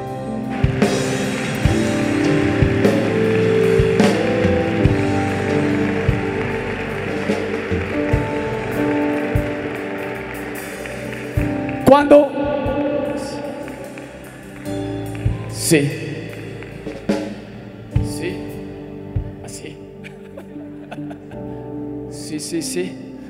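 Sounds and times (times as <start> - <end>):
sustained musical tones: 0.0 - 22.1
audience clapping loudly: 0.2 - 18.6
speech: 12.0 - 12.3, 15.7 - 16.0
laughter: 20.0 - 21.6.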